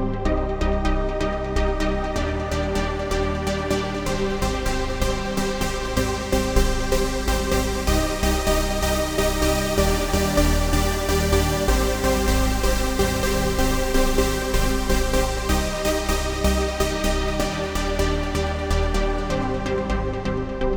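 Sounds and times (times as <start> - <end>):
new trance synth lead: 0.1 - 20.7.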